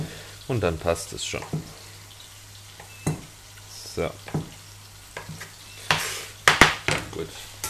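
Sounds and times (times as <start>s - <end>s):
minced meat sizzling in a hot pan: 0.0s - 7.6s
speech: 0.5s - 1.8s, 4.0s - 4.5s, 7.2s - 7.5s
spatula scraping and stirring minced meat in a pan: 5.2s - 6.4s.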